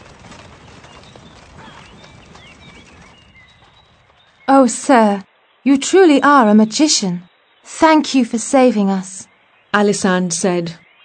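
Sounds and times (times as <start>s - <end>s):
knights' horses galloping away: 0.0s - 5.2s
birds chirping: 0.0s - 11.0s
speech: 4.5s - 10.8s.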